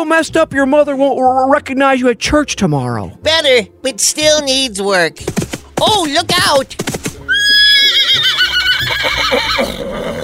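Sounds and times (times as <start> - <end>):
speech: 0.0 - 7.0, 8.9 - 10.2
horse whinnying: 7.2 - 10.2.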